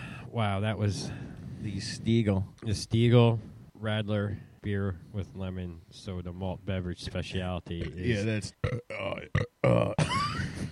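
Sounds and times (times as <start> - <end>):
speech: 0.4 - 10.1
loud croaking burp after drinking lemon radler beer: 7.8 - 10.2.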